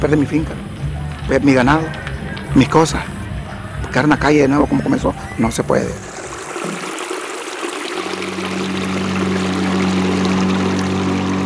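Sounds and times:
speech: 0:00.0 - 0:00.7, 0:01.3 - 0:03.2, 0:03.9 - 0:06.1
small metal boat motor droning: 0:00.0 - 0:11.4
river water rushing around a small metal boat: 0:05.2 - 0:11.4.

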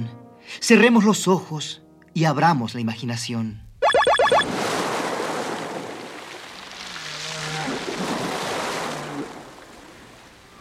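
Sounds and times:
speech: 0:00.6 - 0:03.6
ocean waves surging by the sea: 0:04.4 - 0:10.5.

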